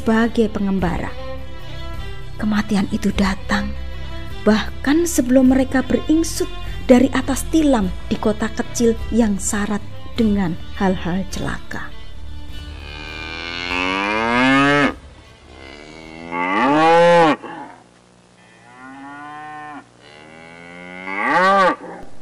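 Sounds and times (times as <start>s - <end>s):
speech: 0.0s - 1.2s, 2.4s - 3.8s, 4.4s - 12.0s
black cow mooing impatiently: 12.6s - 22.1s.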